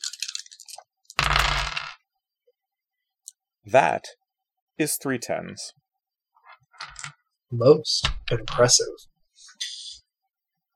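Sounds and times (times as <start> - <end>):
five dice rolling across a hard surface: 0.0 - 2.0, 6.4 - 7.2
speech: 3.7 - 4.2, 4.8 - 5.8, 6.8 - 9.7.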